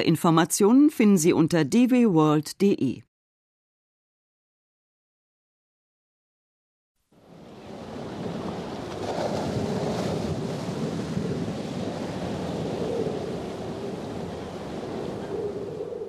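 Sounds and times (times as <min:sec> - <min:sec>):
speech: 0:00.0 - 0:03.1
force 10 storm wind gusts: 0:07.2 - 0:16.0
heavy North Sea surf crashing toward the coast at flood tide: 0:07.2 - 0:16.0.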